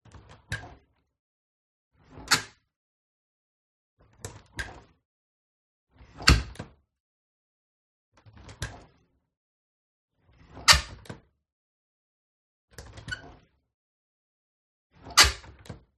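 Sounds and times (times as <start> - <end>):
kitchen window with plastic handle opening and soft closing: 2.1 - 2.6, 6.2 - 6.7, 10.6 - 11.2, 12.8 - 13.5, 15.0 - 15.8.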